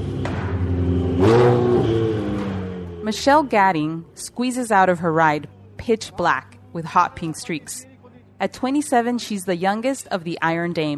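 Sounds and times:
race car engine revving at a racing track on a training day: 0:00.0 - 0:09.1
speech: 0:03.1 - 0:10.9.

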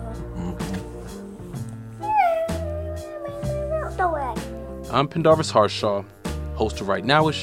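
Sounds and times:
cat meowing with a long drawn-out meow: 0:02.0 - 0:04.0
speech: 0:04.9 - 0:07.4.

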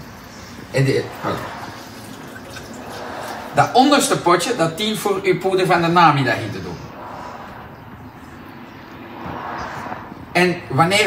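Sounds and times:
lukewarm water pouring into a shaker: 0:00.0 - 0:04.2
speech: 0:00.7 - 0:01.6, 0:03.6 - 0:06.8, 0:10.4 - 0:11.0.

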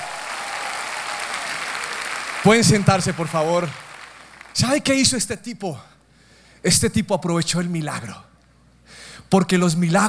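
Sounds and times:
congregation clapping: 0:00.0 - 0:05.0
speech: 0:02.4 - 0:03.8, 0:04.6 - 0:05.9, 0:06.6 - 0:08.3, 0:08.9 - 0:10.0.

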